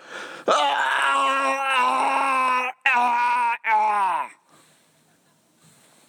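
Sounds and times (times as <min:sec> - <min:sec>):
voice imitating a person yelling while vomiting: 0:00.5 - 0:04.4.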